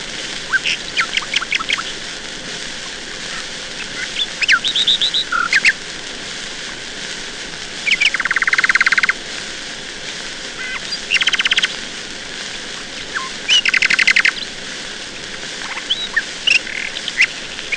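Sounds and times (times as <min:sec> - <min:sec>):
steady hiss: 0:00.0 - 0:17.7
nightingale song: 0:00.4 - 0:02.0, 0:03.3 - 0:05.8, 0:07.9 - 0:09.2, 0:10.6 - 0:11.7, 0:12.7 - 0:14.6, 0:15.6 - 0:17.7.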